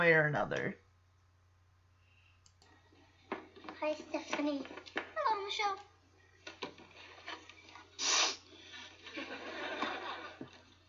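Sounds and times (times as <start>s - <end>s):
speech: 0.0s - 0.8s, 3.8s - 5.9s
faint clicks: 2.4s - 2.8s
person sniffling through the nose: 8.0s - 8.9s
laughter: 9.0s - 10.8s.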